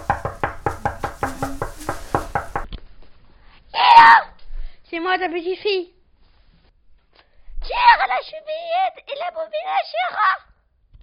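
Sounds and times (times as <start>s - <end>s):
sharp knocking on a door: 0.0s - 2.7s
speech: 4.9s - 6.0s, 7.7s - 10.5s.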